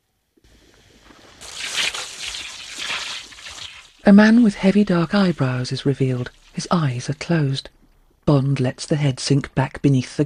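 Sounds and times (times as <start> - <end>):
water jet from a hanging hose spraying onto a face: 1.4 - 6.8
speech: 4.1 - 10.2.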